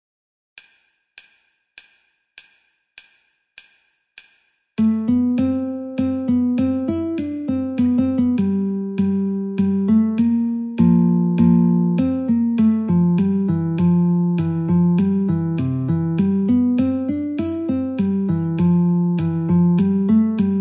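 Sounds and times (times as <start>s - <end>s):
metronome clicking: 3.0s - 20.5s
guitar playing in C: 4.8s - 20.5s.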